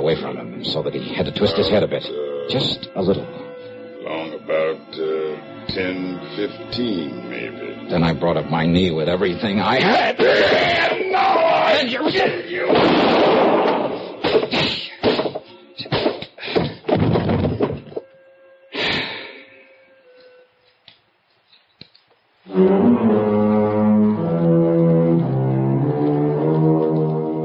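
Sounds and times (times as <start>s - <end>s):
speech: 0.0s - 3.4s, 4.1s - 13.5s
music: 0.0s - 21.2s, 22.4s - 27.4s
sharp loud gunshot: 12.7s - 16.2s
rapid scuffle of heavy thumps and bangs during a struggle: 12.7s - 18.1s.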